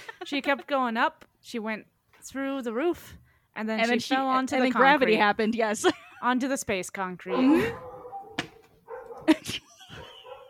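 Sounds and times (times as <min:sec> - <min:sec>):
speech: 0:00.3 - 0:07.9
dogs barking: 0:07.3 - 0:10.4.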